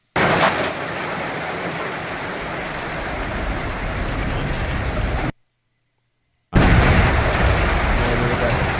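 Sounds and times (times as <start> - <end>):
heavy rain drumming on a tin roof: 0.0 - 5.4, 6.6 - 8.7.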